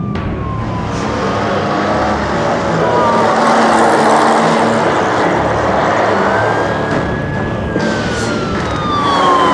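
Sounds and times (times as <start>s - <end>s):
fast-moving police car engine roar: 0.0s - 9.5s
traffic police car siren wailing in pursuit off the M25: 0.0s - 9.5s.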